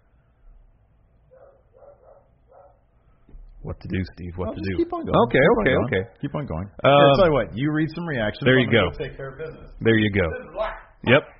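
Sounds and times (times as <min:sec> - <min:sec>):
female dog barking: 0:01.3 - 0:02.8
speech: 0:03.6 - 0:11.3.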